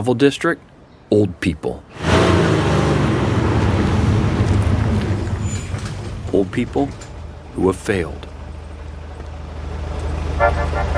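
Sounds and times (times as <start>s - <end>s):
speech: 0.0s - 2.1s, 6.4s - 7.0s, 7.6s - 8.3s
steady low engine hum: 1.9s - 10.9s
car horn honking: 10.3s - 10.9s.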